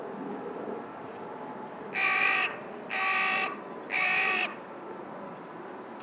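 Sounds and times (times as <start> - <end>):
Carrion crow Corvus corone uttering harsh grating caws: 2.0 - 4.6.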